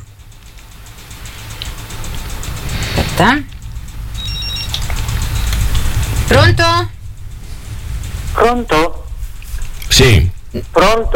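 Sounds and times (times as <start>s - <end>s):
steady hum: 0.0s - 11.1s
quick rising whooshing sweep: 0.9s - 10.5s
speech: 3.1s - 3.5s, 6.3s - 7.0s, 8.4s - 9.0s, 10.0s - 11.1s
short high-pitched electronic telephone ring: 4.2s - 5.5s.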